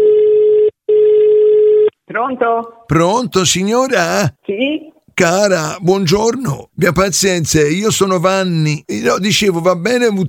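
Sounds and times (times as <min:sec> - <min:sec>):
telephone ringback tone while a call goes through: 0:00.0 - 0:01.9
speech: 0:02.2 - 0:10.2.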